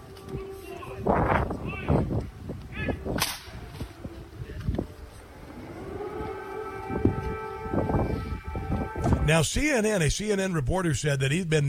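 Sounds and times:
air raid siren wailing: 0.0 - 9.4
sharp cracking noises: 3.2 - 3.6
speech: 9.3 - 11.6.

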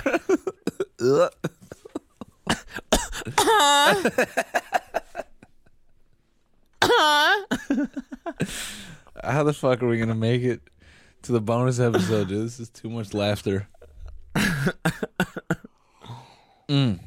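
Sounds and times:
people coughing: 0.0 - 4.5, 11.9 - 12.4, 14.4 - 15.7
speech: 1.0 - 1.5, 2.5 - 4.7, 7.0 - 13.7, 14.6 - 15.5, 16.7 - 17.0.

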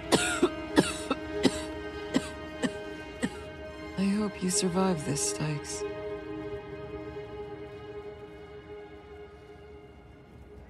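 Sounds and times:
woman coughing: 0.1 - 3.4
speech: 4.3 - 5.9.

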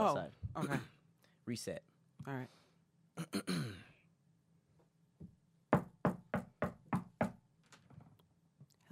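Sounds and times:
speech: 0.0 - 0.9, 1.5 - 2.6, 3.2 - 3.8
knocking on the door of a house: 5.2 - 7.4.

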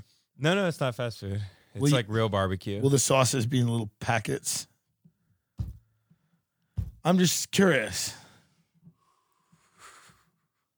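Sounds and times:
speech: 0.4 - 4.7, 7.0 - 8.2
heavy breathing: 8.2 - 10.3.

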